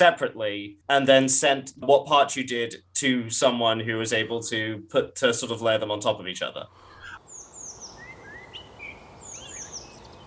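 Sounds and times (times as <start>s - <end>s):
speech: 0.0s - 6.9s
birds chirping and calling in high-pitched bursts: 6.8s - 10.2s.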